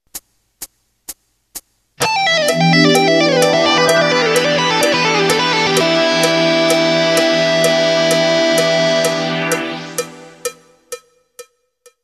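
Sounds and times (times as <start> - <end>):
wide range pentatonic melody: 2.4 - 10.4.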